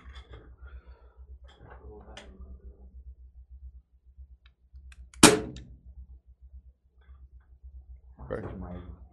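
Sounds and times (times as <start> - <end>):
low hum: 0.0 - 9.1
airsoft pistol shot fired with one pellet at a curtain: 5.2 - 5.7.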